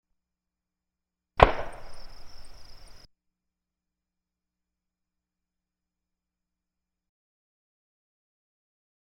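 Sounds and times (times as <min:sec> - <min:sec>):
British Enfield No.4 Mk 1 rifle shot: 0:01.4 - 0:03.0.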